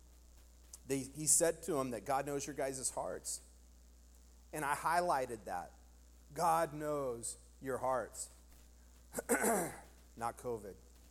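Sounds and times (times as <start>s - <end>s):
speech: 0.9s - 3.5s, 4.5s - 8.4s, 9.1s - 10.8s
man clearing a dry throat: 9.1s - 10.0s.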